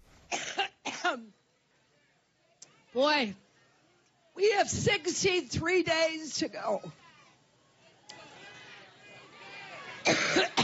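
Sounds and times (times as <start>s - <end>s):
woman coughing: 0.3s - 1.3s, 10.0s - 10.6s
speech: 3.0s - 3.4s, 4.4s - 7.0s.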